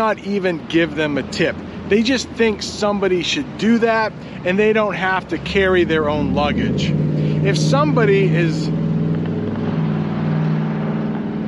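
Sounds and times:
speech: 0.0 - 8.8
loud low engine rumble of a passing truck: 0.0 - 11.4.

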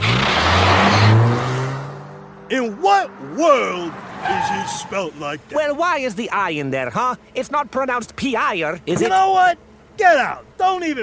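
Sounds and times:
taxi engine revving as the car accelerates away: 0.0 - 5.8
speech: 2.5 - 11.0.

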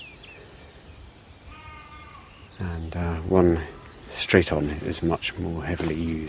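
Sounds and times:
faint outdoor ambience: 0.0 - 6.2
sheep bleating softly on a hillside: 1.5 - 2.5
speech: 2.6 - 6.2.

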